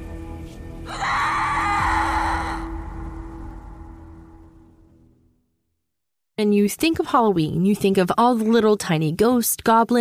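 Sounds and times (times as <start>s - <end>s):
piercing scream at a house on Halloween night: 0.9s - 4.5s
speech: 6.4s - 10.0s.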